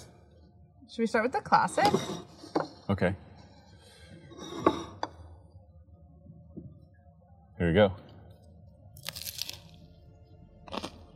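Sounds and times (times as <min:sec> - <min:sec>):
speech: 0:00.9 - 0:03.3, 0:07.6 - 0:08.0
crisp crackly crunches of biting into a BLT sandwich: 0:09.0 - 0:09.9.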